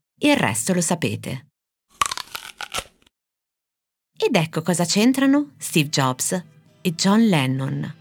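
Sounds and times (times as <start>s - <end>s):
speech: 0.2s - 1.5s, 4.2s - 8.0s
crunchy bite into an apple: 1.9s - 3.1s.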